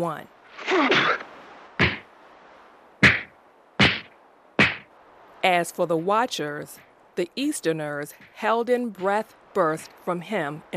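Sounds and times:
speech: 0.0s - 1.2s, 5.4s - 10.7s
dull heavy blows of a fistfight between two men: 1.8s - 2.1s, 3.0s - 4.9s.

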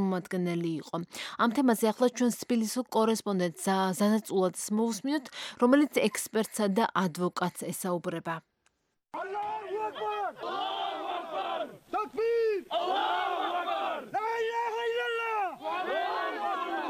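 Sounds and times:
speech: 0.1s - 8.5s
villagers shouting at arriving special forces: 9.2s - 16.8s.

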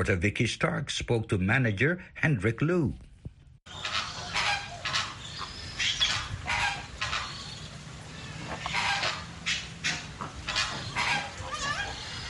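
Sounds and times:
speech: 0.0s - 3.1s
steady outdoor noise: 0.0s - 12.2s
flock of flamingos honking in a walk-through enclosure at a bird sanctuary: 3.7s - 12.2s.

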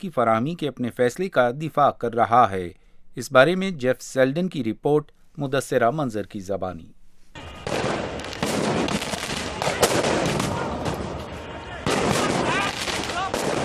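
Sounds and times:
speech: 0.0s - 7.0s
constant roar of noise at a student protest: 7.4s - 13.6s
police gunfire at a student protest: 7.4s - 13.6s.

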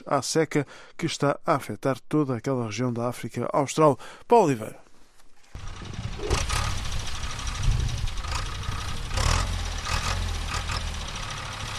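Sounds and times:
speech: 0.0s - 4.8s
mechanical clatter: 5.6s - 11.3s
heavy tractor engine rumbling while preparing farmland: 5.6s - 11.7s.

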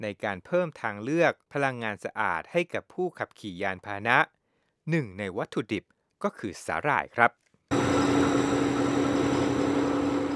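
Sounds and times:
speech: 0.0s - 8.2s
lab equipment producing biodiesel from algae humming: 7.7s - 10.3s.

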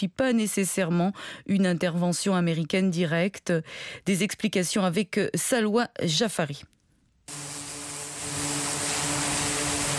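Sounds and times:
speech: 0.0s - 6.7s
military aircraft engines roaring on an aircraft carrier deck: 7.5s - 9.9s.

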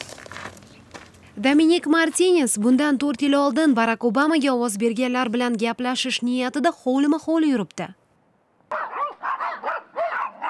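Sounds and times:
speech: 1.4s - 8.0s
guard dog barking with whining tones: 8.7s - 10.4s.

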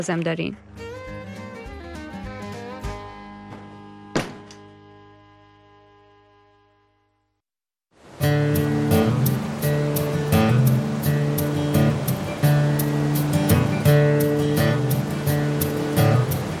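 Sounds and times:
speech: 0.0s - 0.8s
large waterfall roaring at Niagara Falls: 8.0s - 16.5s.

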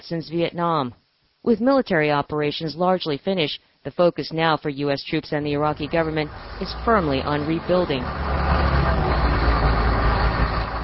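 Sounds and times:
speech: 0.0s - 8.4s
dozens of trucks rumbling through war-damaged city streets clearing rubble: 5.5s - 10.8s
broadband grinding noise of rubble being picked up: 5.7s - 10.8s.

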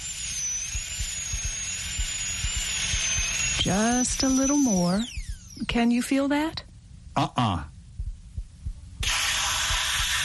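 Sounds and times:
dental drill whining while drilling out an old filling in a tooth: 0.0s - 6.0s, 9.0s - 10.2s
soft low thumps: 0.7s - 5.8s, 7.8s - 9.0s
speech: 3.6s - 6.6s, 7.2s - 7.7s.

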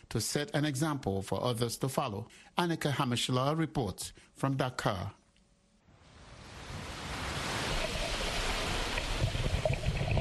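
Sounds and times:
speech: 0.1s - 5.2s
ocean waves breaking on the shore off Dakar: 6.0s - 10.2s
wind noise: 6.1s - 10.2s.

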